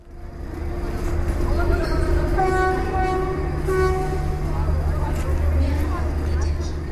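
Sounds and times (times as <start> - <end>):
steady low rumble of trains at a busy station: 0.0 - 6.9
train horns at a busy railway station: 0.7 - 5.7
murmur of crowd voices: 1.0 - 6.9
public-address noise: 1.3 - 6.9.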